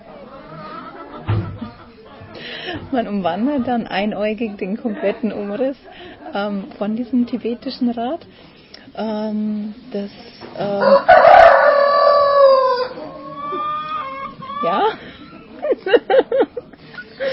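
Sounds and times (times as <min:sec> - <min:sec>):
rooster clucking: 0:00.1 - 0:02.2, 0:10.6 - 0:15.1
speech: 0:02.7 - 0:11.5, 0:14.6 - 0:15.0
laughter: 0:04.4 - 0:06.6, 0:13.1 - 0:17.3
rooster crowing: 0:10.6 - 0:14.8.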